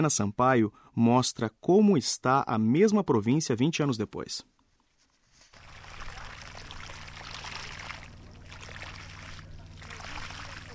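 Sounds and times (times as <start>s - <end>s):
speech: 0.0s - 4.5s
water gushing from a pumped irrigation pipe in Tigray: 5.5s - 10.7s
low hum of generator-powered water pump: 5.6s - 10.7s.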